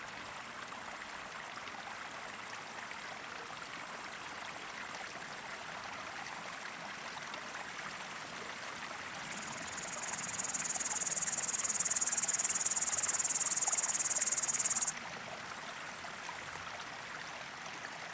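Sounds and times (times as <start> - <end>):
constant babbling mountain stream in Drôme France: 0.1 - 18.1
upland green bush-cricket sustained very high shrill buzz: 9.2 - 14.9.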